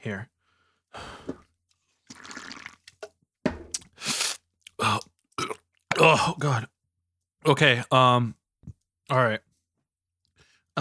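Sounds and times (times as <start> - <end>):
speech: 0.0 - 0.3, 6.0 - 6.7, 7.4 - 8.4, 9.1 - 9.5
wet slurping sips of a gin and tonic: 2.0 - 2.9, 3.8 - 4.4.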